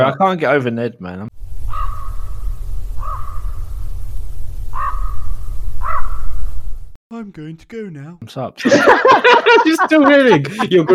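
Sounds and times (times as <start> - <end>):
speech: 0.0 - 1.3, 7.1 - 10.9
raven cawing: 1.6 - 2.4, 3.0 - 3.6, 4.7 - 6.4
laughter: 8.6 - 10.9.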